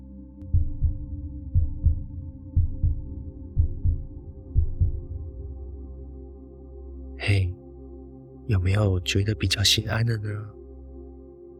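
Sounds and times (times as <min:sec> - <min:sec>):
heartbeat thudding in double beats: 0:00.5 - 0:05.2
speech: 0:08.5 - 0:10.6.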